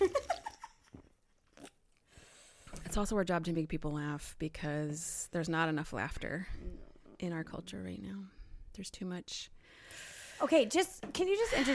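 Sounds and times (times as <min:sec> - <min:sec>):
person sipping and gulping a drink: 0:00.9 - 0:02.5
speech: 0:02.9 - 0:11.7.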